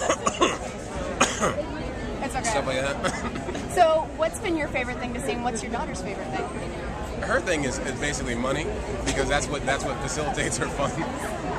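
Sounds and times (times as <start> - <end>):
person coughing into an interviewer's microphone: 0.0 - 1.6, 3.0 - 3.7
speech: 2.7 - 11.5.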